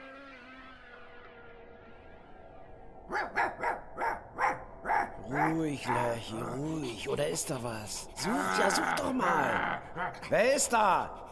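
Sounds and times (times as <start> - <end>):
German shepherd guard dog barking: 3.1 - 6.3
speech: 5.5 - 11.3.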